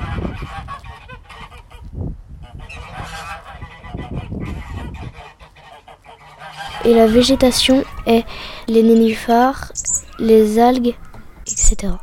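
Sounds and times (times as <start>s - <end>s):
flock of ducks quacking: 0.0s - 12.0s
speech: 6.8s - 11.0s, 11.7s - 12.0s.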